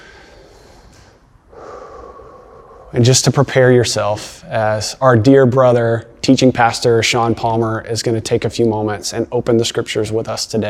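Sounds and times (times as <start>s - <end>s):
deep breath drawn in: 0.0s - 3.1s
speech: 2.9s - 10.6s.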